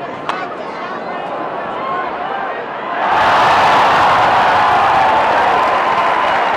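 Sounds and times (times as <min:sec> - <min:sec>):
spring training baseball crowd murmuring and chattering: 0:00.0 - 0:03.1
spring training baseball crowd cheering in Arizona: 0:00.0 - 0:06.5.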